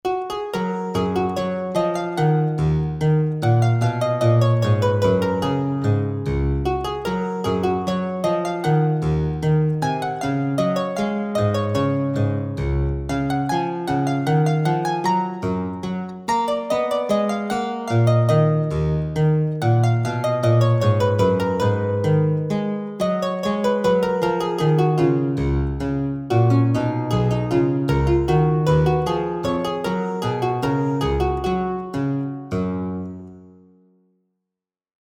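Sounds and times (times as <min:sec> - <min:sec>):
English harpsichord with lute stop playing a gavotte: 0:00.0 - 0:33.6.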